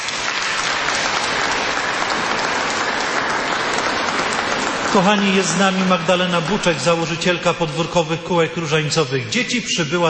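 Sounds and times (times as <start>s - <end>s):
large audience applause: 0.0s - 7.7s
speech: 5.0s - 10.0s.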